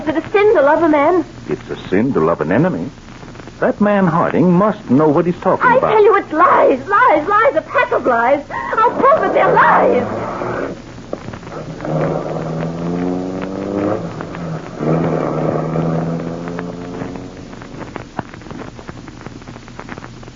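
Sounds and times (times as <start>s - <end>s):
speech: 0.0s - 3.0s, 3.6s - 10.2s
rumble: 7.0s - 20.3s
car engine revving as a car drives off: 8.9s - 10.8s, 11.4s - 18.1s.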